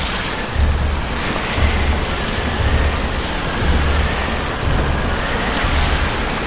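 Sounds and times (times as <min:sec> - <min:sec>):
storm wind roaring over the sea: 0:00.0 - 0:06.4.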